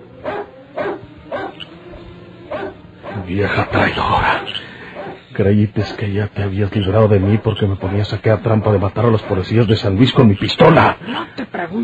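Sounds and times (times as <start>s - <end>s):
steady low hum: 0.0s - 11.8s
dog barking: 0.2s - 1.7s, 2.5s - 3.3s, 5.0s - 5.3s, 7.2s - 8.1s
speech: 3.3s - 4.7s, 5.4s - 11.8s.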